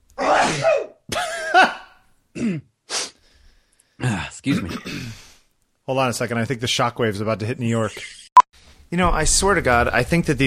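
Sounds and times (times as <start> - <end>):
loud sneeze: 0.2 - 1.0, 1.6 - 3.2
short sharp sniffs: 2.9 - 3.5
speech: 4.4 - 5.0, 5.9 - 8.2, 8.9 - 10.4.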